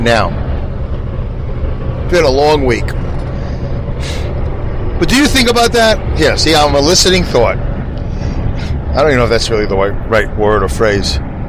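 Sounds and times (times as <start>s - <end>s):
speech: 0.0s - 0.4s, 2.1s - 3.0s, 5.0s - 7.7s, 8.6s - 11.3s
low-pitched rumble of a truck engine heard from inside the cab while driving: 0.0s - 11.4s
short hissing burst of a truck air brake: 3.3s - 4.4s.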